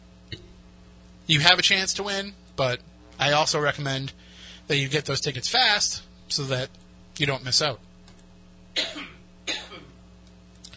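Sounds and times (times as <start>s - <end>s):
faint steady hum: 0.0s - 10.7s
speech: 1.3s - 7.9s
person coughing: 8.8s - 10.0s.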